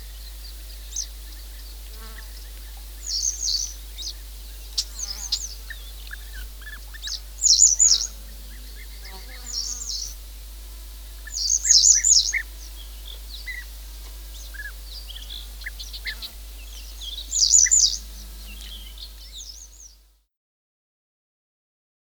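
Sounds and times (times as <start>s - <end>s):
bird singing high rapid sibilant phrases: 0.0s - 10.2s, 11.2s - 20.0s
constant low hum: 0.0s - 20.1s.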